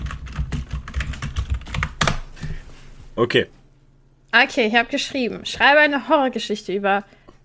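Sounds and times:
rapid typing on a computer keyboard: 0:00.0 - 0:02.2
speech: 0:03.2 - 0:03.6, 0:04.3 - 0:07.2.

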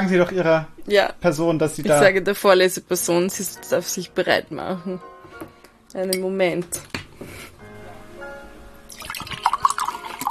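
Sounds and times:
speech: 0:00.0 - 0:07.5
water pouring into a container: 0:08.9 - 0:10.2.

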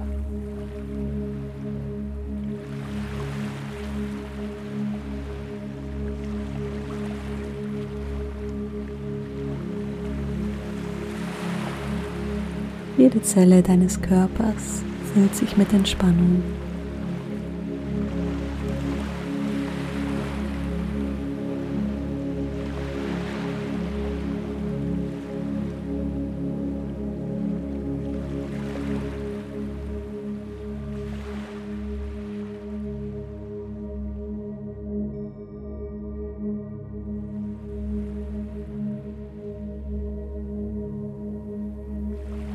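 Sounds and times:
steady low humming drone: 0:00.0 - 0:42.5
ocean waves breaking on shore: 0:02.5 - 0:25.8, 0:28.1 - 0:32.8, 0:42.1 - 0:42.5
speech: 0:13.0 - 0:16.7.

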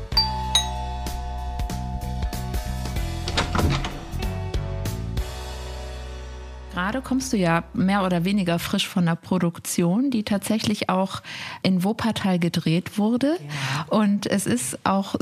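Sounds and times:
doorbell chime ringing: 0:00.1 - 0:04.2
bright ringing tones: 0:00.2 - 0:03.3
speech: 0:06.9 - 0:15.1.

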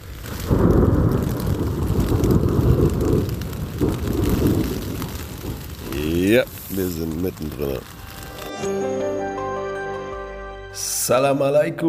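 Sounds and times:
rolling thunder from a thunderstorm in Iran: 0:00.0 - 0:08.2
faint hiss of rain: 0:00.0 - 0:11.8
speech: 0:06.3 - 0:08.0, 0:08.6 - 0:09.0, 0:10.8 - 0:11.8.

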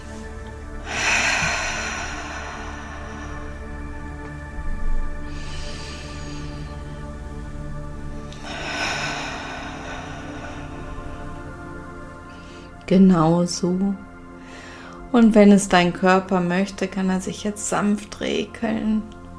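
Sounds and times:
deep breaths taken during a guided relaxation: 0:00.0 - 0:12.9, 0:14.3 - 0:15.1
soft steady tonal background: 0:00.0 - 0:19.3
speech: 0:12.9 - 0:14.1, 0:15.1 - 0:19.2.

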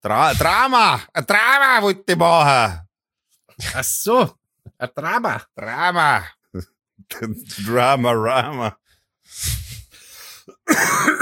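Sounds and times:
speech: 0:00.0 - 0:02.8, 0:03.6 - 0:09.6, 0:10.7 - 0:11.2
rough breathy coughing: 0:10.5 - 0:11.2.

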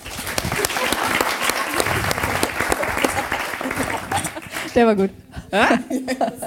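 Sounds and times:
live audience applause: 0:00.0 - 0:04.8
laughter: 0:00.2 - 0:06.4
speech: 0:04.8 - 0:06.4.

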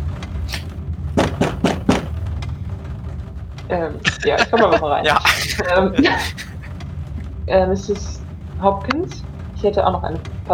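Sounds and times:
low steady hum: 0:00.0 - 0:10.5
laughter: 0:00.5 - 0:02.1, 0:03.8 - 0:06.8
firm knocks on a door: 0:01.2 - 0:02.2
speech: 0:03.7 - 0:06.5, 0:07.5 - 0:10.5.

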